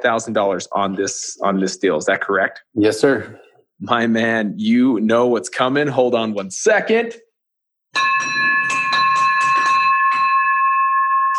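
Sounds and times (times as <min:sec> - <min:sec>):
speech: 0:00.0 - 0:07.2
victory bell rung loudly: 0:08.0 - 0:11.3.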